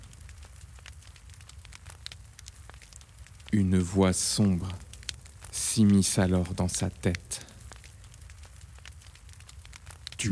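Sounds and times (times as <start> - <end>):
fire crackling: 0.0 - 10.3
speech: 3.5 - 4.8, 5.8 - 7.5.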